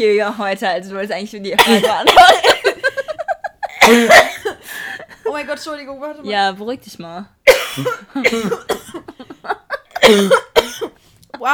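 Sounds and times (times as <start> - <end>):
speech: 0.0 - 2.7, 5.3 - 9.1, 10.1 - 10.4
harsh raspy wheezy coughing fit: 1.6 - 3.0, 3.6 - 5.1, 7.5 - 9.2, 9.9 - 11.0
laughter: 2.4 - 3.8, 9.1 - 10.0.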